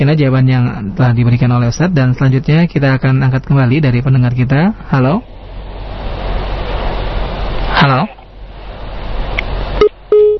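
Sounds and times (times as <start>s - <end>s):
speech: 0.0s - 5.4s, 7.8s - 8.2s
steady telephone line tone: 0.0s - 10.3s
short electronic beep of a cut-off telephone call: 9.8s - 10.3s.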